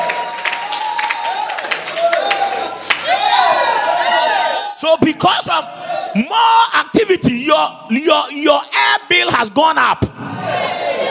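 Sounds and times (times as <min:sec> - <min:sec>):
audience applause in church: 0:00.0 - 0:03.9
people cheering in church: 0:00.0 - 0:08.7, 0:10.1 - 0:11.1
speech: 0:04.8 - 0:10.3.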